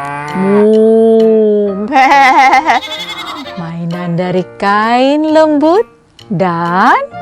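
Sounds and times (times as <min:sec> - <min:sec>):
speech: 0:00.0 - 0:00.9, 0:01.9 - 0:03.1, 0:04.1 - 0:07.2
goat or sheep bleating: 0:02.6 - 0:03.7
cow mooing: 0:02.8 - 0:03.7.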